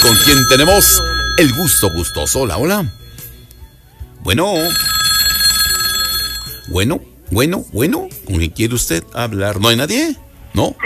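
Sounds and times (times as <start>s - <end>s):
speech: 0.0s - 3.0s, 4.2s - 5.0s, 6.7s - 10.8s
telephone ringing for an incoming call: 0.0s - 3.6s, 4.4s - 6.8s.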